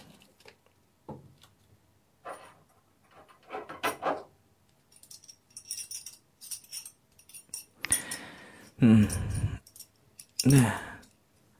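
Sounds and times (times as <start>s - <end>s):
rustling, rattling handling of a collar: 0.0s - 11.5s
collar's metal buckle being unfastened: 4.8s - 8.3s, 9.0s - 11.2s
speech: 8.8s - 9.4s, 10.4s - 10.8s.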